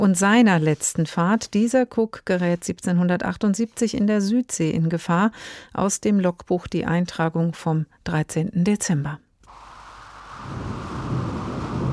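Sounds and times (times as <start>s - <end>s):
speech: 0.0s - 9.2s
thunder rumbling on a dark stormy night in the South Seas: 9.5s - 11.9s.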